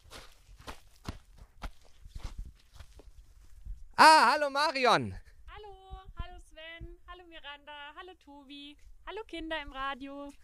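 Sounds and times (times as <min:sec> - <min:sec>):
footsteps walking into a near-natural display garden under construction: 0:00.0 - 0:03.7
speech: 0:04.0 - 0:05.2, 0:07.6 - 0:10.4.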